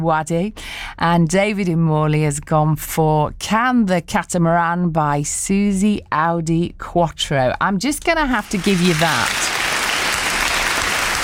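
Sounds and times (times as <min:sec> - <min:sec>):
speech: 0:00.0 - 0:09.5
steady applause from many hands: 0:08.6 - 0:11.2.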